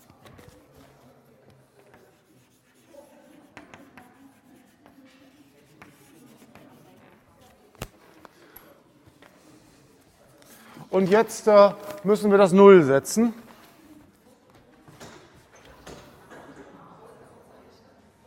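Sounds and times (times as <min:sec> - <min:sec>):
writing on a board during a lecture on derivatives: 0:00.0 - 0:07.6
speech: 0:11.0 - 0:13.4.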